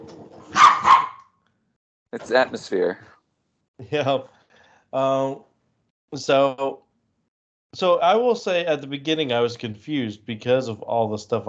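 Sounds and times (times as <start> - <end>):
dog barking: 0.5 - 1.3
speech: 2.2 - 3.1, 3.8 - 5.5, 6.1 - 6.8, 7.7 - 11.4.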